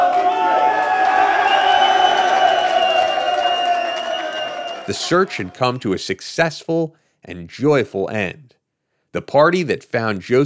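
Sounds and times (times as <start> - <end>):
large crowd shouting and cheering at night: 0.0 - 5.8
shrill locomotive whistle: 1.4 - 5.0
speech: 4.9 - 10.4.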